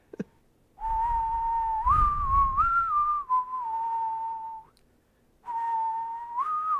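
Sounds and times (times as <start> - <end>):
person whistling a theme tune: 0.8 - 4.8, 5.4 - 6.7
faint breathy noise: 4.9 - 5.5.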